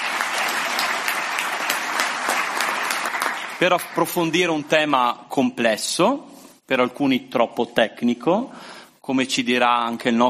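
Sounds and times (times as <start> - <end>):
audience applause at an evening gathering held by a youth centre: 0.0 - 4.7
speech: 3.6 - 10.2.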